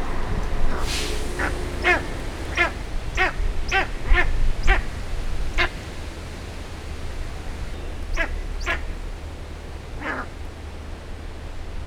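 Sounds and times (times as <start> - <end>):
steppe eagle calling forcefully at a zoo: 0.0 - 6.1, 7.1 - 10.5.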